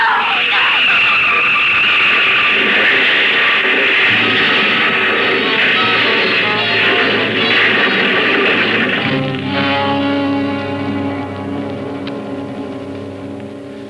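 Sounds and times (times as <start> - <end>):
steady droning hum: 0.0 - 13.8
bus crashing and rolling over: 1.0 - 10.0.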